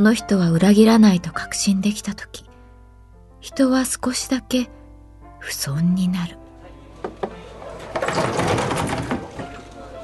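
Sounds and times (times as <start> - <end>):
speech: 0.0 - 2.5, 3.4 - 4.8, 5.4 - 6.4
izakaya sliding door rattling open: 7.5 - 10.0.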